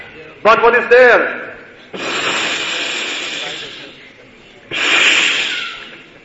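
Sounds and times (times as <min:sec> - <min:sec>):
speech: 0:00.4 - 0:02.1
breathy hisses, probably a voice imitating snakes: 0:01.9 - 0:06.2.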